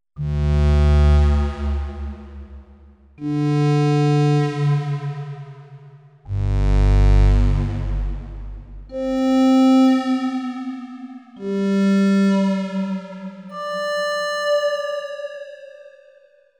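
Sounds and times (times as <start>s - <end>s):
Korg M1R synthesizer: 0.3s - 16.3s.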